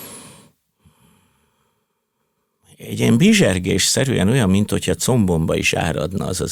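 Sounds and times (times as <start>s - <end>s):
forceful breath blown out during a breathing exercise: 0.0s - 1.6s
speech: 2.8s - 6.4s.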